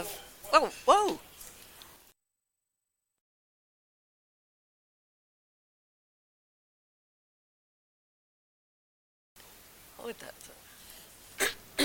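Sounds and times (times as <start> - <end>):
speech: 0.0 - 1.3, 10.1 - 10.4
harsh coughs: 11.4 - 11.8.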